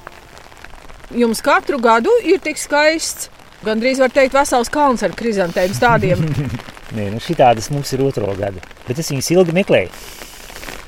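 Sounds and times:
light drizzling rain outside: 0.0s - 10.8s
speech: 1.1s - 10.2s
laughter: 5.5s - 6.7s.

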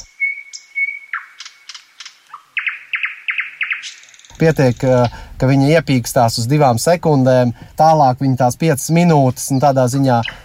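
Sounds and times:
nightingale singing: 0.0s - 5.2s, 9.4s - 10.4s
speech: 4.4s - 10.4s.

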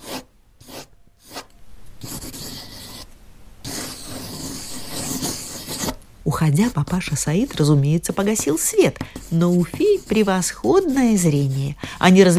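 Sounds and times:
colored pencils scratching across notebook paper while drawing: 0.0s - 12.3s
speech: 6.3s - 12.3s.

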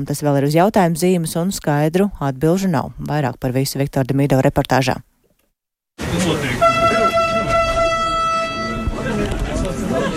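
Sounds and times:
speech: 0.0s - 5.1s
crowd chatter: 6.0s - 10.1s
station noise: 6.0s - 10.1s
electric train horn sounding a multi-tone departure signal: 6.6s - 9.2s.

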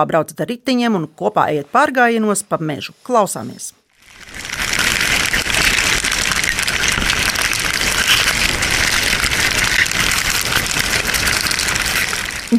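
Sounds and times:
speech: 0.0s - 4.5s
amplified ants scurrying with dense crackling and rustling: 3.9s - 12.5s.

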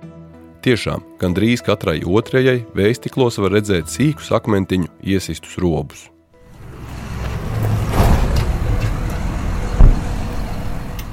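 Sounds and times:
speech: 0.6s - 6.2s
car driving along a road: 6.4s - 11.1s
loud thump: 7.3s - 10.4s.

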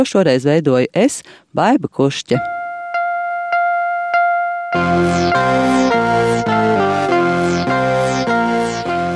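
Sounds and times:
speech: 0.0s - 2.6s
electronic pips of a radio station signal: 2.4s - 9.1s
loud, bright fanfare-like radio station signal tune: 2.4s - 9.1s.

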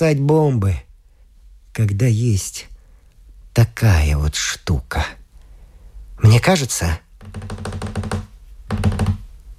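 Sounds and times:
speech: 0.0s - 0.9s, 1.8s - 2.7s, 3.6s - 5.2s, 6.2s - 7.9s
soft quick knocking on a door: 7.2s - 9.3s.

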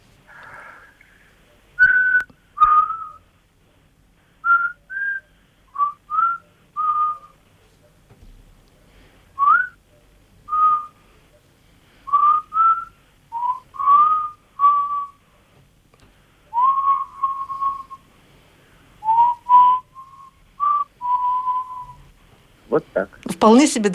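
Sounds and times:
person whistling a melody over a phone line: 1.8s - 3.2s, 4.4s - 7.4s, 9.4s - 9.8s, 10.5s - 11.0s, 12.1s - 15.2s, 16.5s - 18.1s, 19.0s - 22.0s
speech: 22.8s - 23.9s.

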